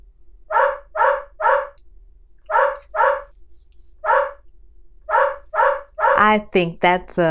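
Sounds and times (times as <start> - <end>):
dog barking: 0.5 - 1.8, 2.5 - 3.3, 4.0 - 4.4, 5.1 - 6.2
speech: 6.2 - 7.3.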